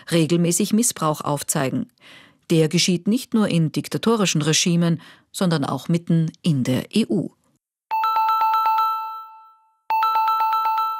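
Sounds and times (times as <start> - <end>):
speech: 0.1 - 7.4
telephone ringing on an outgoing call to Rome: 7.9 - 10.9.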